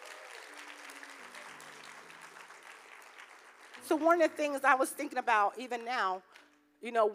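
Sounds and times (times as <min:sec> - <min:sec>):
congregation applauding: 0:00.0 - 0:04.6
speech: 0:03.8 - 0:07.1.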